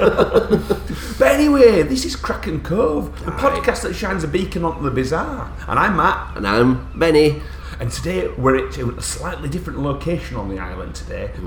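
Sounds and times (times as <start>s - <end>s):
laughter: 0.0s - 9.0s
low hum: 0.0s - 11.4s
speech: 0.0s - 11.4s.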